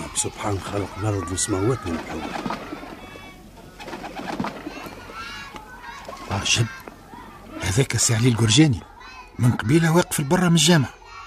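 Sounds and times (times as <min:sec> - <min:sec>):
pigeons cooing in a flock at a mosque: 0:00.0 - 0:07.7
birds chirping and twittering: 0:00.0 - 0:11.2
speech: 0:00.2 - 0:02.7, 0:06.4 - 0:06.8, 0:07.7 - 0:11.0.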